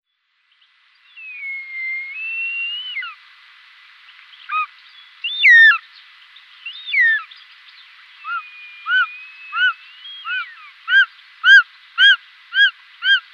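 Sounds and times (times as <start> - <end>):
Circaetus gallicus whistling calls: 1.2 - 3.2, 4.5 - 5.8, 6.7 - 7.3, 8.2 - 13.2.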